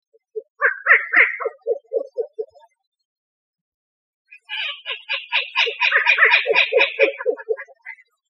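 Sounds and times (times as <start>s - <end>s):
Strix rufipes calling: 0.4s - 2.6s, 4.3s - 8.1s.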